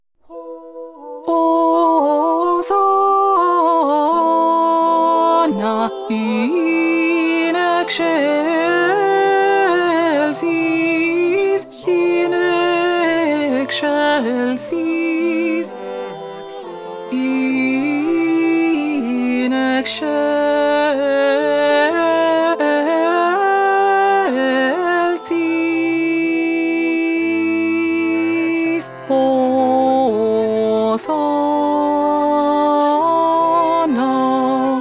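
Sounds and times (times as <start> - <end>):
second alto voice singing: 0.2 - 34.8.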